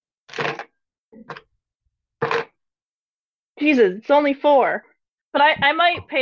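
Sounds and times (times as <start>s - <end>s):
four dice rolled clattering across a table: 2.2s - 2.5s
speech: 3.6s - 6.2s.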